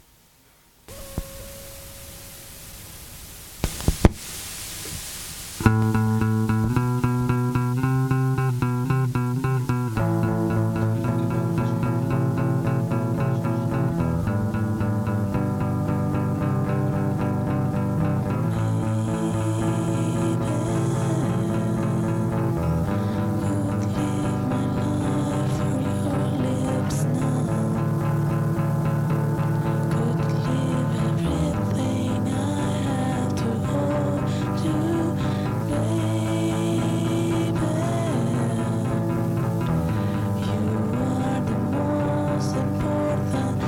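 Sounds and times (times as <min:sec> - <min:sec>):
bass: 0:05.5 - 0:43.6.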